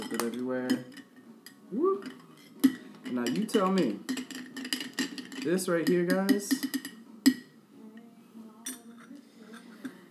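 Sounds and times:
glasses of a bourbon and cinnamon drink clinking in a New Year toast: 0.0s - 7.6s, 8.6s - 10.0s
glassy taps: 0.0s - 7.6s
speech: 0.2s - 1.0s, 3.1s - 4.2s, 5.4s - 6.8s.

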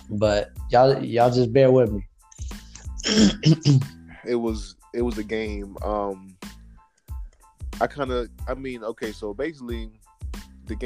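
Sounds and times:
speech: 0.1s - 2.1s, 3.0s - 6.4s, 7.8s - 10.0s
person clearing throat with hacking bursts: 3.0s - 3.9s.

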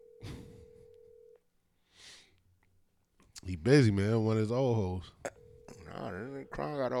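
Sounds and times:
electronic phone call ringing tone: 0.0s - 1.4s, 5.3s - 6.9s
speech: 3.4s - 5.2s, 6.0s - 6.9s.

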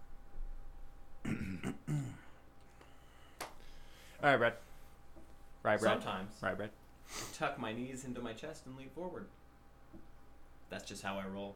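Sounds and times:
person clearing throat: 1.2s - 2.4s
speech: 1.3s - 2.2s, 4.2s - 4.7s, 5.6s - 10.1s, 10.7s - 11.5s.

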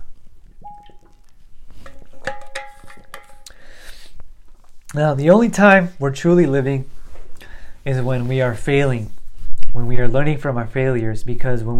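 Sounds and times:
glass ringing softly as it's picked up: 0.6s - 1.2s
speech: 4.9s - 6.9s, 7.8s - 9.2s, 9.8s - 11.7s.

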